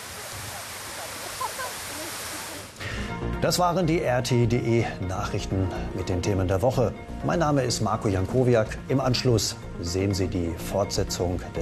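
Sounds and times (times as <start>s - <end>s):
park fountain water splashing: 0.0s - 2.8s
speech: 3.4s - 11.6s.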